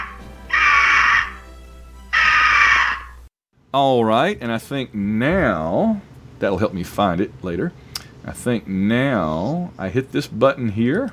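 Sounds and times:
eagle screeches: 0.0 - 1.4, 2.2 - 3.2
speech: 3.7 - 11.1.

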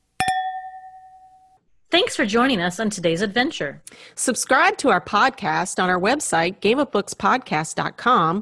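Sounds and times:
two glasses clinking in a toast: 0.2 - 1.6
speech: 1.9 - 8.4.

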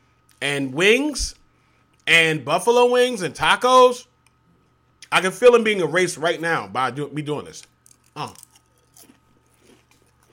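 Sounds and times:
speech: 0.4 - 1.4, 2.1 - 4.1, 5.1 - 8.5
person biting and chewing raw carrot: 7.7 - 10.3.

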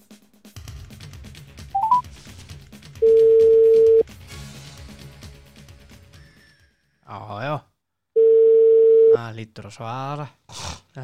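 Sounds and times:
steady telephone tone: 1.8 - 2.0, 3.0 - 4.0, 8.2 - 9.2
telephone key-press beeps while dialing a call: 1.8 - 2.0
speech: 9.4 - 11.0.

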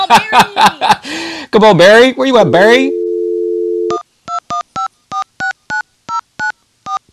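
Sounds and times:
laughter: 0.0 - 1.1
speech: 0.0 - 3.0
telephone dial tone of outgoing call: 3.0 - 4.9
touch-tone keypad beeps dialing an outgoing phone call: 3.8 - 7.1.

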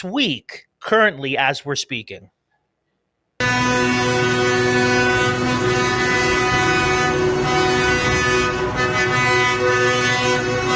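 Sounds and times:
speech: 0.0 - 2.4
vehicle horns honking at a protest in Germany: 3.4 - 10.7.

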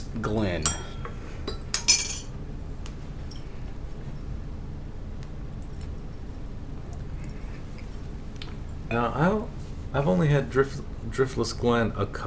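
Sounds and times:
speech: 0.2 - 0.9, 9.0 - 12.2
glass clinking: 0.6 - 2.3, 3.2 - 3.7.

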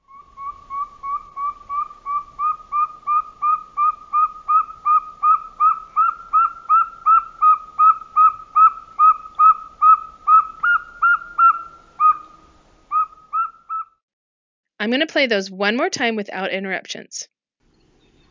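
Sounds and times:
northern saw-whet owl giving whistled toots: 0.0 - 13.9
speech: 14.9 - 17.4.

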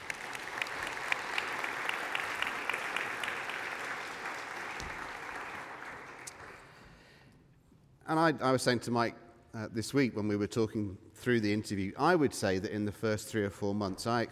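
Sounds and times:
audience applause: 0.0 - 6.8
speech: 8.1 - 14.3.

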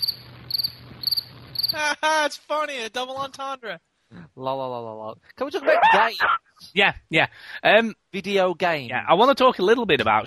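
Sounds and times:
crickets chirping: 0.0 - 1.8
speech: 1.7 - 10.2.

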